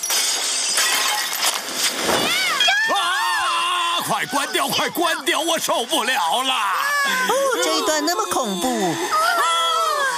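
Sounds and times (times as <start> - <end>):
property being smashed: 0.0 - 2.7
glass shattering: 0.0 - 2.8
excited voices shouting: 2.3 - 10.1
speech: 4.1 - 9.4.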